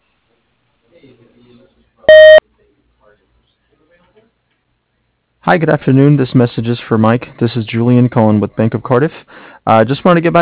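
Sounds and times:
voicemail beep tone: 0:02.1 - 0:02.4
speech: 0:05.5 - 0:10.3.

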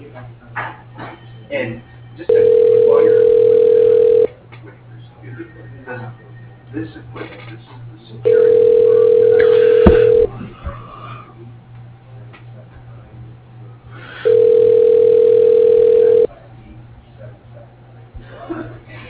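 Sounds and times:
low hum: 0:00.0 - 0:19.0
phone ringback tones as a call is transferred to voicemail: 0:02.3 - 0:04.3, 0:08.3 - 0:10.3, 0:14.2 - 0:16.3.

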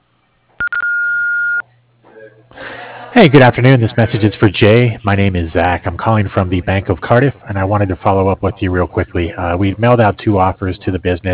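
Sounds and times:
answering machine electronic beep before a voice message: 0:00.6 - 0:01.6
answering machine quick tone blips: 0:00.6 - 0:01.6
speech: 0:03.2 - 0:11.3.

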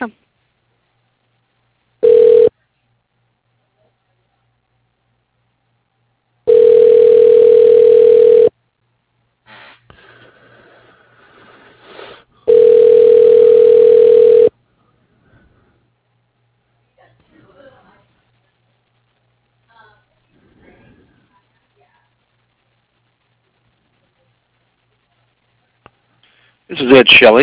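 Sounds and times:
speech: 0:00.0 - 0:00.2, 0:26.9 - 0:27.4
telephone ringback tone while an office call is transferred: 0:02.0 - 0:02.5, 0:06.5 - 0:08.5, 0:12.5 - 0:14.5.

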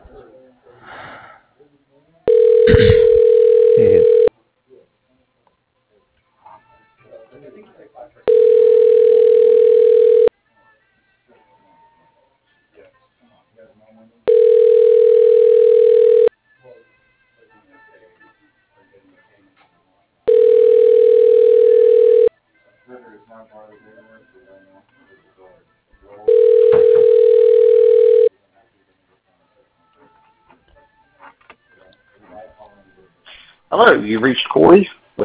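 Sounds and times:
faint noise: 0:00.0 - 0:35.2
telephone ringback tone during call transfer: 0:02.3 - 0:04.3, 0:08.3 - 0:10.3, 0:14.3 - 0:16.3, 0:20.3 - 0:22.3, 0:26.3 - 0:28.3
speech: 0:33.8 - 0:35.2.

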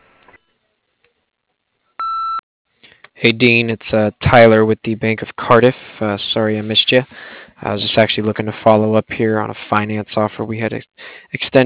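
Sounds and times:
answering machine beep: 0:02.0 - 0:02.4
speech: 0:03.2 - 0:11.6.

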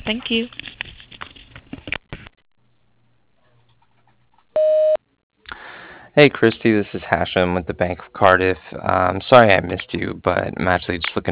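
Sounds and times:
speech: 0:00.1 - 0:00.6, 0:06.2 - 0:11.3
voicemail answering machine beep tone: 0:04.6 - 0:05.0
recorded voice speaking: 0:06.1 - 0:11.3.

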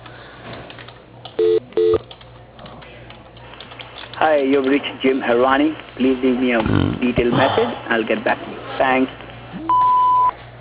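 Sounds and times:
electronic phone keypad tones as call is transferred to voicemail: 0:01.4 - 0:02.0, 0:09.7 - 0:10.3
speech: 0:04.2 - 0:09.7.

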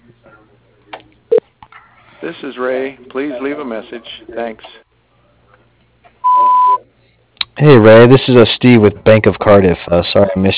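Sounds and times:
speech: 0:02.2 - 0:04.8, 0:07.6 - 0:10.5
short sharp telephone beep: 0:06.2 - 0:06.8.

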